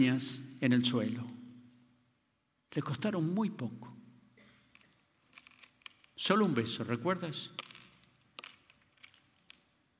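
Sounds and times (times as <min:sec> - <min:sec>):
speech: 0:00.0 - 0:01.4, 0:02.7 - 0:04.0, 0:06.2 - 0:07.6
coins dropping and clinking: 0:04.7 - 0:06.2, 0:07.6 - 0:09.9.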